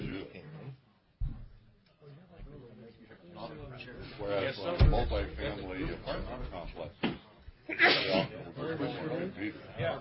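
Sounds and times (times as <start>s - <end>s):
speech: 3.8s - 9.9s
single sharp loud sneeze during a council meeting: 7.7s - 8.3s.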